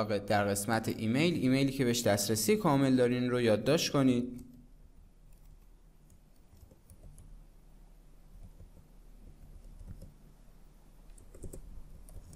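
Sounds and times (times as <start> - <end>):
speech: 0.0 - 4.5
low steady hum: 0.0 - 12.3
typing on a computer keyboard: 6.1 - 7.3, 9.6 - 10.2, 11.1 - 12.3.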